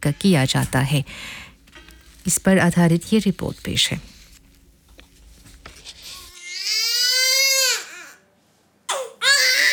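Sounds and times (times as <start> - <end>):
speech: 0.0 - 1.4, 2.2 - 4.1
newborn baby crying just after birth: 6.4 - 8.2, 8.9 - 9.7.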